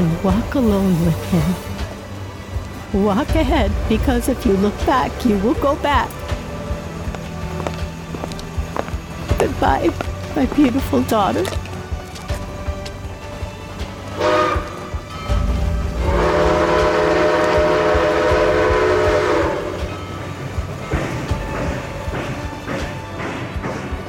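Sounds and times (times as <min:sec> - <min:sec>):
train rumbling while pulling away: 0:00.0 - 0:24.0
speech: 0:00.2 - 0:01.8, 0:02.9 - 0:06.2, 0:09.4 - 0:11.6
train horn: 0:14.1 - 0:20.3.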